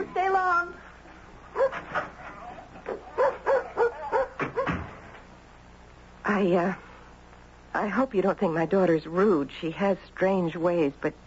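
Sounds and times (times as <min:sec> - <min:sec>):
dog barking: 0:01.5 - 0:04.9
speech: 0:06.3 - 0:06.8, 0:07.8 - 0:11.2.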